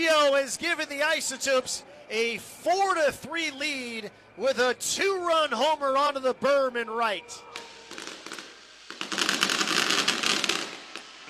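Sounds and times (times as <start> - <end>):
speech: 0.0 - 7.7
fireworks grand finale crackling bursts and pops: 7.5 - 11.2.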